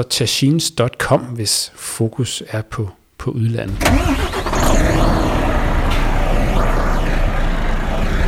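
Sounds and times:
speech: 0.0s - 5.4s
heavy diesel engine of a Volvo FH truck starting and rumbling: 3.7s - 8.2s.

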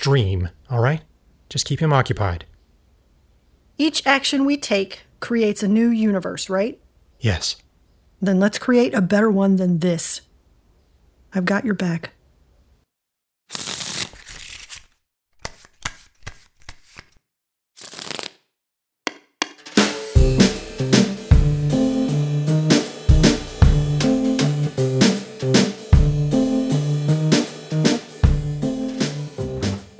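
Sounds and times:
speech: 0.0s - 2.5s, 3.8s - 7.6s, 8.2s - 10.3s, 11.3s - 12.2s
playing cards being shuffled and dealt: 13.5s - 17.2s, 17.8s - 18.4s
loud music with a steady beat: 19.7s - 29.9s.

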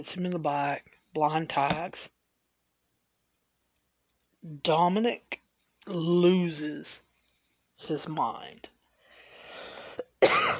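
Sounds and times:
speech: 0.0s - 2.2s, 4.4s - 7.0s, 7.8s - 8.7s
raspy breathy cough: 10.0s - 10.5s.

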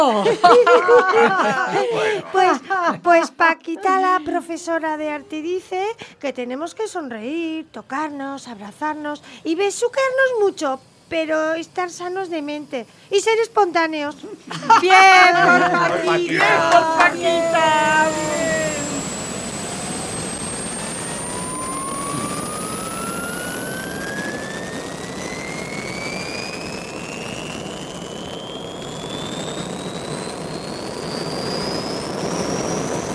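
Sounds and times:
laughter: 0.0s - 4.4s, 14.3s - 19.0s
speech: 0.0s - 18.9s
helicopter turbine whine: 9.7s - 33.1s
coast guard police helicopter flying overhead: 16.4s - 33.1s.

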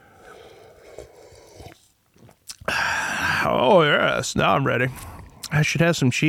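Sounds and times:
breathy slurp of someone sipping bitter wine: 0.0s - 3.5s
quiet mouth noises with soft wet clicks: 0.2s - 2.7s
speech: 3.5s - 6.2s.

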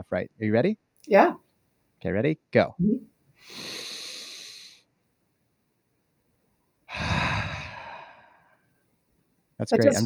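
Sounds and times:
speech: 0.0s - 1.4s, 2.0s - 3.8s, 9.6s - 10.0s
long deep breaths: 3.4s - 4.9s, 6.9s - 8.7s.

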